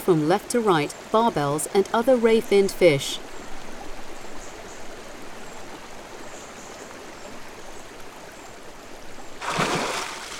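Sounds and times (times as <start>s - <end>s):
speech: 0.0s - 3.3s
river stream water flowing: 0.0s - 10.3s
water splash: 9.4s - 10.3s.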